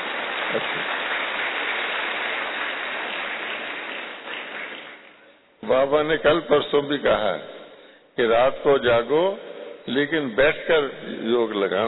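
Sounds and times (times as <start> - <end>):
audience clapping: 0.0 - 5.4
speech: 5.7 - 7.5, 8.2 - 11.8.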